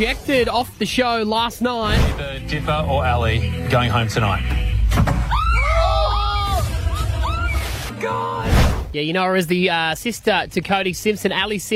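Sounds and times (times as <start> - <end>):
speech: 0.0 - 5.2, 8.0 - 11.7
woman screaming: 5.3 - 8.5.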